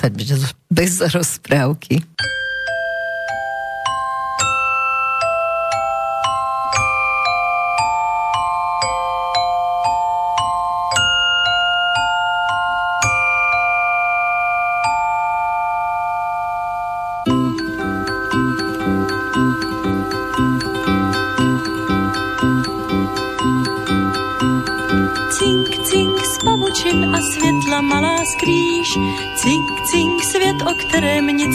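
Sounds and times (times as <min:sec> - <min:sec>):
speech: 0:00.0 - 0:02.4
tinkling chime notes in a gentle melody: 0:02.2 - 0:31.5
fuller song with a steady beat: 0:17.2 - 0:31.5.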